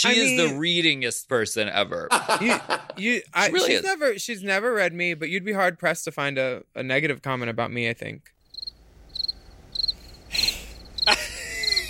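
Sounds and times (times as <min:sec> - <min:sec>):
speech: 0:00.0 - 0:08.4
laughter: 0:02.1 - 0:03.1, 0:11.1 - 0:11.8
crickets chirping in high-pitched trills: 0:08.4 - 0:11.8.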